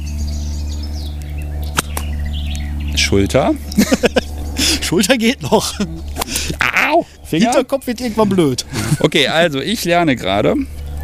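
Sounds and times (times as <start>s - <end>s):
steady low hum: 0.0s - 11.0s
whip being swung forward and cracked: 1.6s - 2.1s
speech: 3.1s - 4.1s, 4.9s - 10.8s
laughter: 3.6s - 9.4s.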